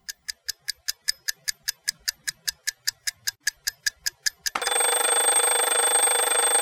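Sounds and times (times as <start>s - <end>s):
alarm clock ticking: 0.0s - 6.6s
alarm clock metallic ringing: 4.6s - 6.6s.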